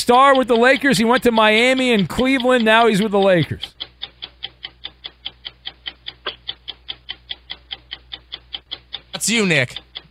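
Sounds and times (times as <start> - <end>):
speech: 0.0 - 3.8, 9.3 - 9.9
game clock ticking: 0.0 - 10.0.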